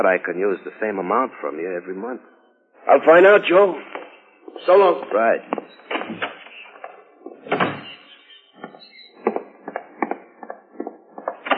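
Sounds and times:
speech: 0.0 - 6.2
connecting door opening and closing: 3.9 - 10.2, 11.2 - 11.5.

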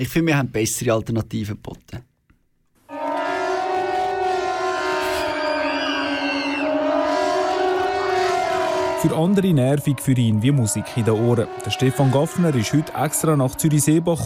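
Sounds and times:
speech: 0.0 - 2.1, 9.0 - 14.2
older pneumatic civil defense siren with ten compressed-air horns in Zürich-Seebach: 2.9 - 14.2.

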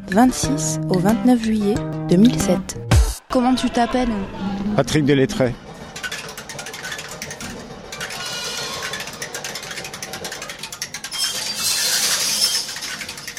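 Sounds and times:
speech: 0.1 - 5.6
homemade mechanical sound machines built from a piano clattering and ticking: 5.1 - 13.3.

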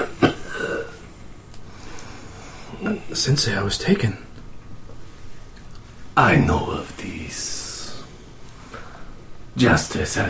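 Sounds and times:
old man's short soft cough: 0.0 - 1.0
speech: 3.1 - 4.3, 6.2 - 7.4, 9.6 - 10.2.

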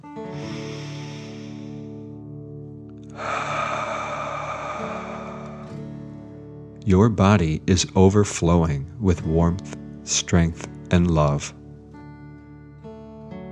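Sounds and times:
soft sustained musical drone: 0.0 - 2.1, 3.1 - 7.5
forceful exhale through the mouth: 0.2 - 2.1, 3.1 - 6.4
slow inhale through the nose: 0.2 - 2.1, 3.1 - 6.3
speech: 6.9 - 11.6.

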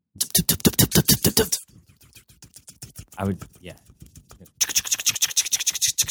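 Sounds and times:
voice imitating a helicopter: 0.3 - 5.1
speech: 3.2 - 3.9.

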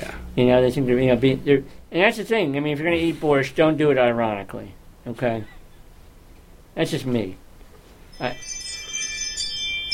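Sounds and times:
speech: 0.0 - 5.6, 6.8 - 7.4, 8.2 - 8.6
doorbell chime from a smart doorbell: 8.1 - 9.9.

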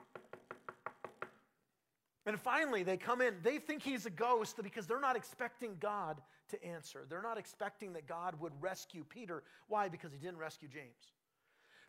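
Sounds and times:
quick hollow knocks on a door: 0.0 - 1.4
speech: 2.3 - 11.2.

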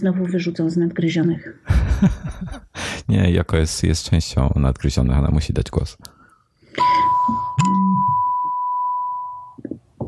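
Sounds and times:
speech: 0.0 - 6.1
laughter: 1.7 - 2.8
phone message notification tone: 6.8 - 8.6.

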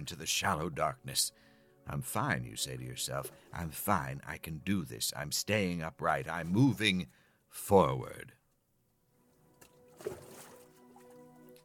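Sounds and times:
speech: 0.0 - 8.4, 10.0 - 10.2
gentle water lapping around a small paddled boat on a river: 9.4 - 11.6
soft splash: 9.4 - 11.6.

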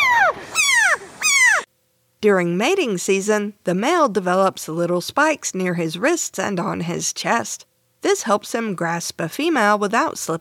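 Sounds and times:
frog alarm call: 0.0 - 1.7
speech: 2.2 - 10.3.

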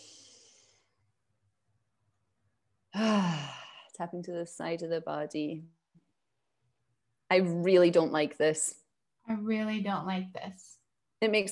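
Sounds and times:
deep breath released as a breathy sigh during a guided tapping exercise: 2.9 - 4.0
speech: 4.0 - 5.8, 7.3 - 11.5.

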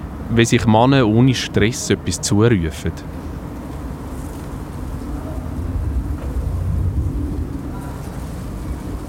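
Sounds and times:
speech: 0.3 - 3.2
wind buffeting the microphone capsule in a garden: 3.0 - 9.0.

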